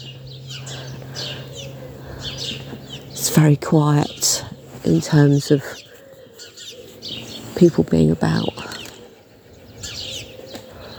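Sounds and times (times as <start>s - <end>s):
house sparrow chirping on a roof gable: 0.0s - 10.9s
steady low hum: 0.0s - 10.9s
speech: 3.2s - 5.9s, 7.6s - 8.6s.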